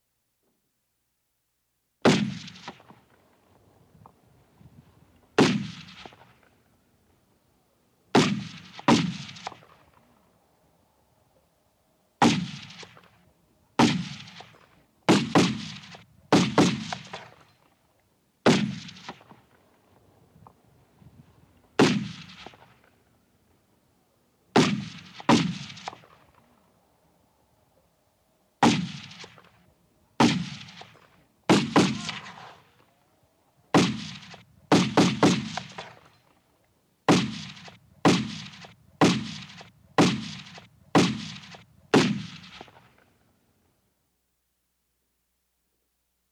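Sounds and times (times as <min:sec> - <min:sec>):
gunshot: 0:02.0 - 0:03.0, 0:05.4 - 0:06.4, 0:08.1 - 0:10.0, 0:12.2 - 0:13.2, 0:13.8 - 0:17.6, 0:18.4 - 0:19.5, 0:21.8 - 0:22.9, 0:24.6 - 0:26.4, 0:28.6 - 0:29.6, 0:30.2 - 0:32.8, 0:33.7 - 0:36.3, 0:37.1 - 0:43.0.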